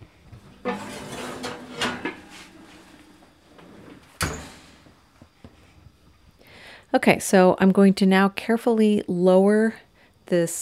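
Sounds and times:
heavy Dutch oven pulled out of a home oven with thick pot holders: 0.4s - 5.0s
speech: 6.9s - 10.6s.

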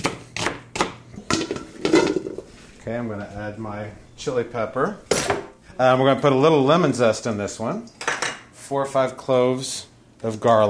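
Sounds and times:
knife chopping onions on a kitchen cutting board: 0.0s - 1.0s
speech: 2.9s - 5.2s, 5.8s - 8.0s, 8.7s - 10.6s.

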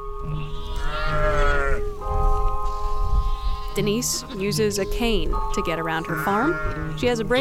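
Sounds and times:
sheep bleating on a farm: 0.3s - 4.7s, 5.9s - 7.3s
speech: 3.8s - 7.3s.

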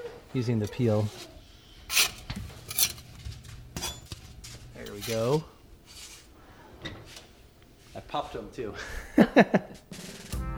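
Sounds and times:
speech: 0.4s - 1.3s, 5.0s - 5.6s, 8.0s - 9.8s
metal spatula clinking and scraping flipping small pita flatbreads while baking: 1.9s - 3.2s, 3.8s - 6.3s
laughter: 8.7s - 9.8s.

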